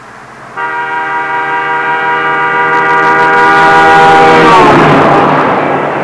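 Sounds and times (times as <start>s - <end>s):
car passing: 0.0s - 6.0s.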